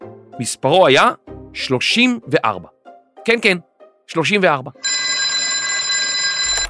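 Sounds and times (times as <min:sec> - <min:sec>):
speech: 0:00.4 - 0:04.8
home telephone installed in 1934 ringing in Tel Aviv: 0:04.8 - 0:06.6
telephone sharp click: 0:05.1 - 0:06.6.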